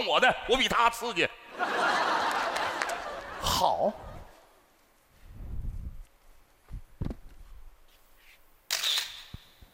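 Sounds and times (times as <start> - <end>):
speech: 0.0 - 2.0, 3.4 - 4.0
laughter: 1.5 - 4.4
camera shutter firing for a photo: 8.7 - 9.5.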